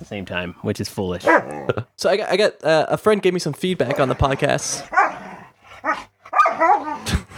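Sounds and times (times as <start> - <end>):
speech: 0.1 - 5.2
dogs barking, growling and yelping in a fight: 1.2 - 1.8, 3.8 - 7.3.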